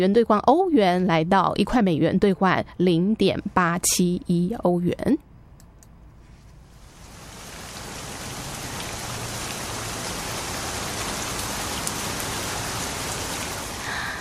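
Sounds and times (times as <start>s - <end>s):
speech: 0.0s - 5.3s
steady rain pattering on a surface: 6.6s - 14.2s.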